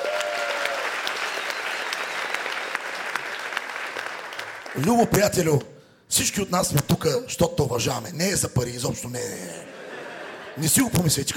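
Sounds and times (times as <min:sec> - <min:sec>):
audience crowd applauding: 0:00.0 - 0:05.2
speech: 0:04.8 - 0:09.8, 0:10.6 - 0:11.3
laughter: 0:09.4 - 0:11.3.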